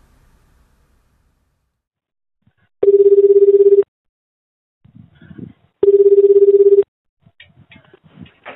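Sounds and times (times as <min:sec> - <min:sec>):
telephone line ringing: 0:02.8 - 0:03.9, 0:05.8 - 0:06.9.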